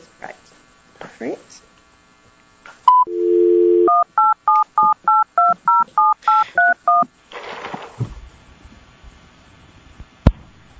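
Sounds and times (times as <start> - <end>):
telephone dial tone: 2.9 - 7.0
telephone keypad beeps dialing a conference call passcode: 2.9 - 7.1.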